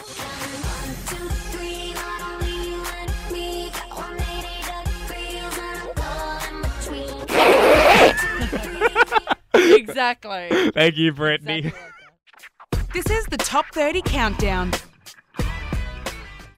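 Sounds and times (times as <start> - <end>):
steady music: 0.0 - 10.0, 12.7 - 16.5
zipper being zipped up: 7.3 - 8.2
laughter: 7.8 - 12.2
speech: 10.0 - 11.9, 13.0 - 14.9.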